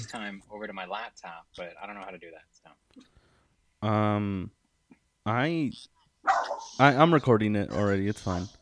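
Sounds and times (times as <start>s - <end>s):
speech: 0.0s - 3.2s, 3.8s - 4.6s, 5.2s - 8.6s
beagle and small Yorkie mix barking: 6.2s - 6.8s, 8.3s - 8.6s.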